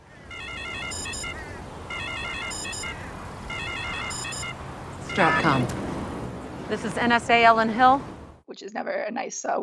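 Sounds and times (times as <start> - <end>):
eerie electronic phone ringtone: 0.2 - 5.7
speech: 5.2 - 5.8, 6.7 - 9.6.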